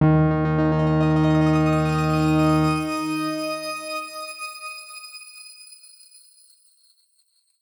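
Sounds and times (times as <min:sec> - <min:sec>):
loud grain note at D#2: 0:00.6 - 0:04.2.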